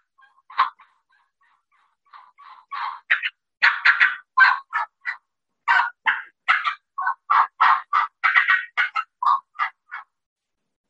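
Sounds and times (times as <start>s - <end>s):
imitation of excited hen turkey yelping: 0.0s - 10.2s.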